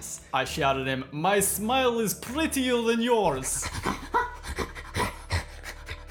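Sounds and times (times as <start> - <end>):
speech: 0.0 - 4.0
voice imitating fevered panting of a half-man half-hyena creature: 3.4 - 6.1.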